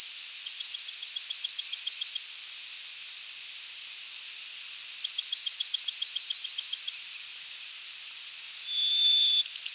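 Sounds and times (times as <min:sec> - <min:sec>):
Bachman's sparrow whistling song: 0:00.0 - 0:02.3, 0:04.3 - 0:07.0, 0:08.7 - 0:09.7.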